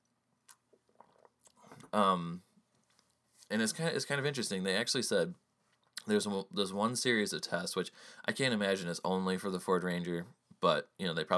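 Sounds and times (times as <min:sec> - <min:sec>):
person slurping a hot drink with mouth clicks: 0:00.5 - 0:02.0
speech: 0:01.9 - 0:02.5, 0:03.5 - 0:05.4, 0:06.0 - 0:11.3.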